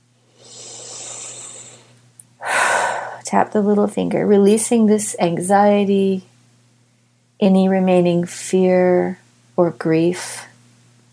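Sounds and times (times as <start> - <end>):
big slow breath in and out during a tapping relaxation exercise: 0.3 - 3.2
speech: 3.3 - 6.3, 7.4 - 10.5.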